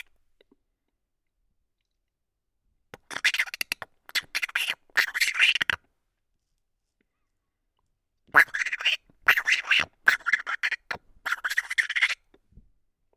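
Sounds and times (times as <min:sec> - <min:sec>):
chipmunk chattering in rattling bursts of harsh pulses: 0:03.1 - 0:05.8, 0:08.4 - 0:12.1.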